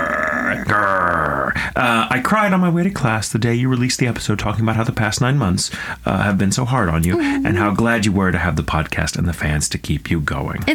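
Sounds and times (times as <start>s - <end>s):
person growling: 0.0s - 1.6s, 7.0s - 7.8s
speech: 0.6s - 10.7s.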